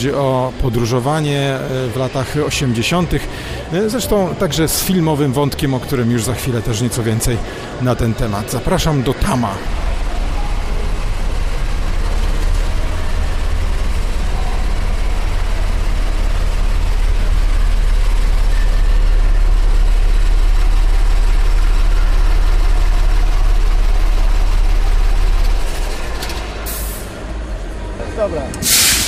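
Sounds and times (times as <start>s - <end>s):
speech: 0.0s - 9.9s
Yugoslav luxury tourist coach diesel engine idling: 0.0s - 29.0s
clatter: 9.7s - 26.7s
brief hiss: 28.6s - 29.0s.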